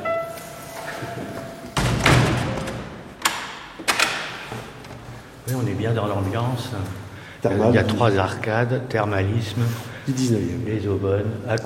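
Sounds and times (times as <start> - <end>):
door with stained-glass panels swinging shut in a 19th-century thermal spa building: 1.0 - 4.8
door knocks and clicks as it settles: 1.8 - 4.6
speech: 5.5 - 11.6.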